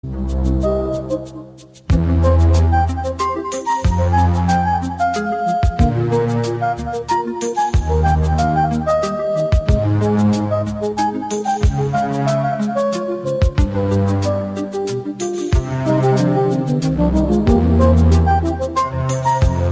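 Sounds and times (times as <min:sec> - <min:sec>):
bossa baroque music: 0:00.1 - 0:19.7.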